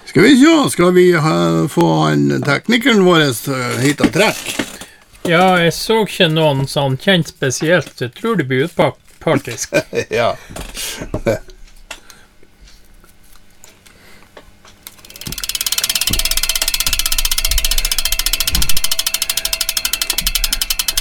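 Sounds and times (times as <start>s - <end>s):
speech: 0.2s - 11.5s
scattered clicks: 14.8s - 20.9s
rapid mechanical ticking: 14.9s - 20.9s.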